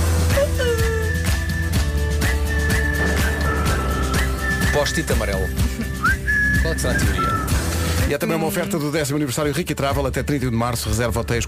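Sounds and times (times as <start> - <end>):
steady musical backing with a regular low beat: 0.0 - 10.4
whistled melody of clear sustained high notes: 0.3 - 8.1
speech: 4.9 - 5.6, 6.7 - 7.5, 8.1 - 11.4.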